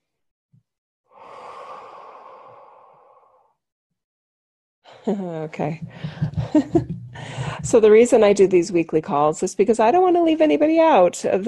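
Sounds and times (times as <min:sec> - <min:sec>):
deep breath in and long exhale during a guided relaxation exercise: 0:01.1 - 0:03.6
speech: 0:05.0 - 0:11.4.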